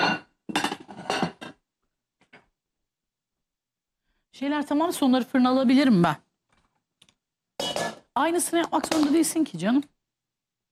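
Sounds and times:
clean kitchen dishes clattering as they are lifted and handled: 0.0s - 1.6s, 7.6s - 8.1s
speech: 4.4s - 6.2s, 8.2s - 9.9s.

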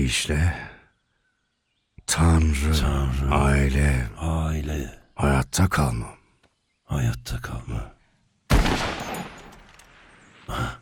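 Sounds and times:
speech: 0.0s - 0.7s, 2.1s - 6.2s, 6.9s - 8.0s, 10.5s - 10.7s
video game gunshots fired at an animal while hunting: 8.5s - 10.0s.

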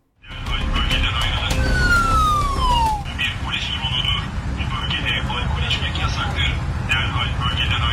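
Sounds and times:
loud steady noise: 0.2s - 7.9s
police drone warning siren: 1.0s - 3.4s
repeating high electronic tones: 1.3s - 3.1s.

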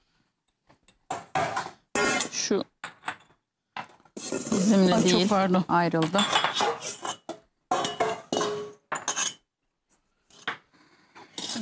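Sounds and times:
two metal pots clattering as they are handled: 1.0s - 9.5s, 11.2s - 11.6s
speech: 2.4s - 2.7s, 4.6s - 6.7s.

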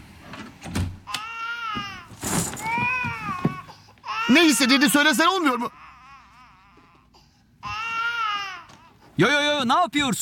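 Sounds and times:
baby crying: 1.1s - 9.0s
speech: 4.3s - 5.8s, 9.2s - 10.2s.

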